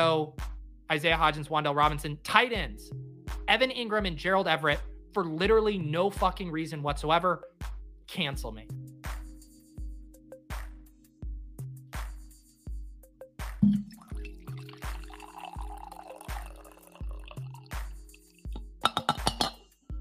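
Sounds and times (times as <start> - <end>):
speech: 0.0 - 8.9
glassy clinks: 13.6 - 17.7, 18.9 - 19.6
coffee splashing into a mug: 13.6 - 18.0.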